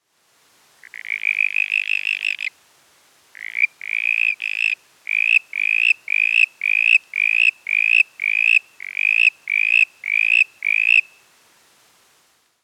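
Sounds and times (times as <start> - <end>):
Verreaux's tree frog Litoria verreauxii calling: 0.8 - 2.6, 3.3 - 11.3.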